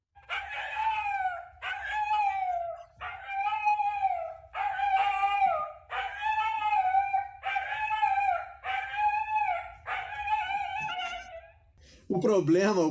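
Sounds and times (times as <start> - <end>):
dog howling in word-like phrases: 0.2 - 11.8
speech: 12.1 - 12.8.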